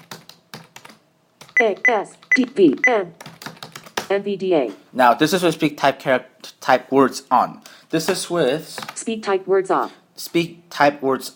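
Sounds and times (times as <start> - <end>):
typing on a computer keyboard: 0.0 - 4.1
speech: 1.6 - 3.2, 4.1 - 11.3.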